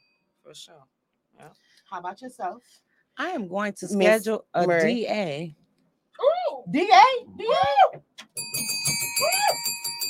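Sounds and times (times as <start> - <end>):
speech: 0.5 - 5.6, 6.2 - 8.0
bell sound effect ringing: 8.4 - 10.0.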